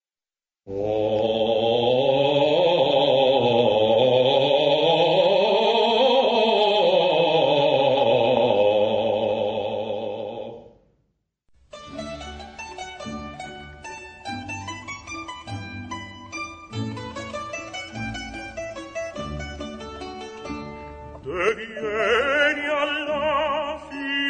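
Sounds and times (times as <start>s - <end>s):
baritone voice: 0.7s - 10.8s, 16.0s - 24.2s.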